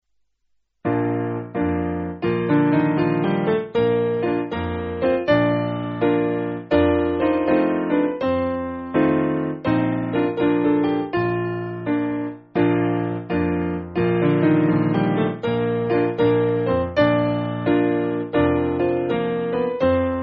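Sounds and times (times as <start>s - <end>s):
simple piano piece: 0.8s - 20.2s.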